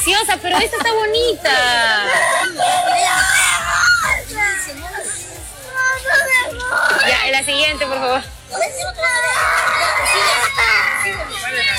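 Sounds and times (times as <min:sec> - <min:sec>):
speech: 0:00.1 - 0:02.9, 0:07.0 - 0:11.7
several people screaming and shouting: 0:02.0 - 0:04.7, 0:06.0 - 0:07.2, 0:08.6 - 0:11.7.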